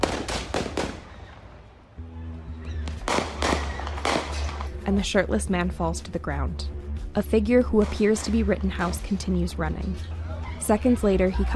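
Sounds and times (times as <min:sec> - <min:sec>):
gunshots fired in the parking lot of an auto service shop: 0:00.0 - 0:01.7, 0:02.8 - 0:04.8
speech: 0:04.9 - 0:11.5.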